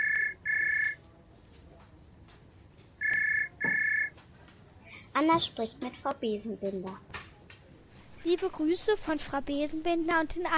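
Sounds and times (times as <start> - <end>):
telephone ringing in a double-ring pattern: 0.0 - 1.0, 3.0 - 4.1
speech: 5.2 - 7.1, 8.2 - 10.5.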